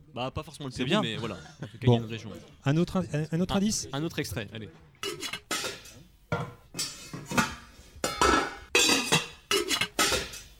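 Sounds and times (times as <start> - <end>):
speech: 0.2 - 5.2
metal pots and pans clattering in a busy kitchen: 5.0 - 10.5.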